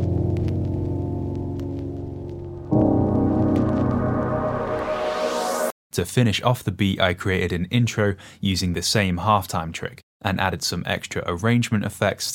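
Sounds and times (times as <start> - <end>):
hissing white-noise sweep climbing in pitch: 0.0 - 5.7
sustained piano chord: 0.0 - 5.7
speech: 6.0 - 12.3.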